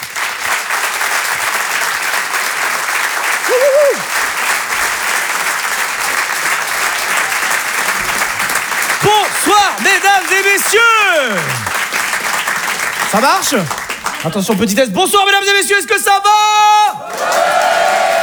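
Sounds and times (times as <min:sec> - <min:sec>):
large audience applauding loudly: 0:00.0 - 0:18.2
whoop or cheer: 0:03.4 - 0:04.1, 0:16.6 - 0:18.2
speech: 0:10.0 - 0:11.7, 0:13.2 - 0:17.4.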